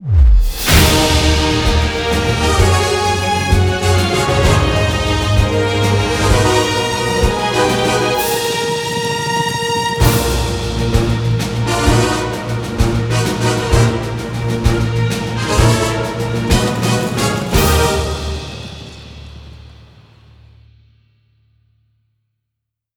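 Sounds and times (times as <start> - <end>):
medium big win jingle: 0.7 - 19.2.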